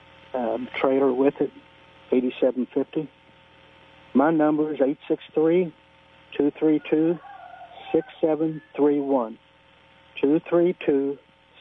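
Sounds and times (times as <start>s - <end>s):
speech: 0.3s - 3.2s, 4.1s - 7.3s, 7.9s - 9.4s, 10.2s - 11.2s
rooster crowing over a narrow telephone line: 6.7s - 8.9s.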